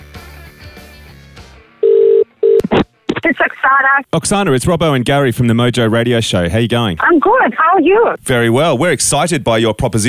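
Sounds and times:
music: 0.0 - 1.9
steady low telephone ring tone: 1.8 - 2.6
speech: 3.4 - 10.0.

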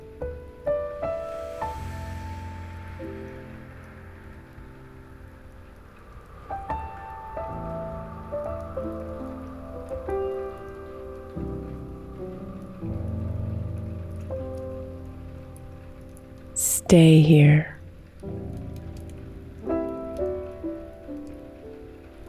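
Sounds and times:
raindrops pattering and splashing on a hard surface: 0.0 - 16.6, 17.4 - 22.2
speech: 16.9 - 17.8.

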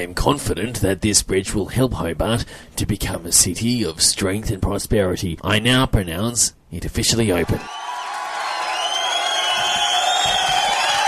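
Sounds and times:
speech: 0.0 - 7.8
large crowd cheering and whooping at the opening of a bridge in Hobart: 7.4 - 11.0.

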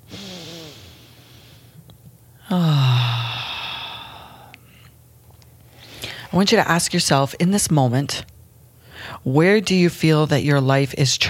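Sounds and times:
breathy voiced sigh-like exhales during a guided breathing session: 0.0 - 1.8, 2.4 - 4.9
speech: 2.5 - 2.8, 6.3 - 8.3, 9.1 - 11.2.

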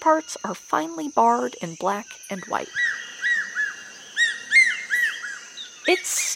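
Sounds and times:
speech: 0.0 - 3.0, 5.9 - 6.3
hawk-eagle calling with clear high whistled notes: 2.7 - 6.3.

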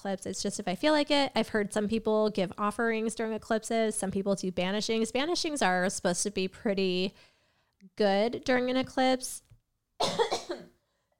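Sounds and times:
speech: 0.0 - 7.3, 7.9 - 9.4, 10.0 - 10.4
person coughing with a persistent possibly allergy-related cough: 10.0 - 11.1.

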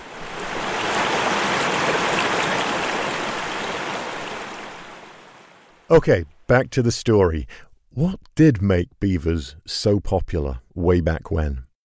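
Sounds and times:
mountain creek rushing over rocks: 0.0 - 5.9
speech: 5.9 - 11.6.

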